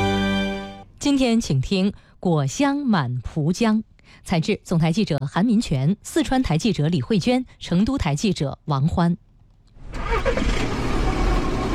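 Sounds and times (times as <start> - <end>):
speech: 1.0 - 9.2
car engine starting for a morning drive out of the city: 9.8 - 11.7.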